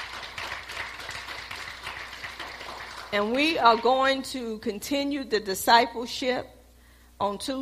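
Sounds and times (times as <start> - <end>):
audience applause: 0.0 - 3.2
speech: 3.1 - 6.6, 7.2 - 7.5.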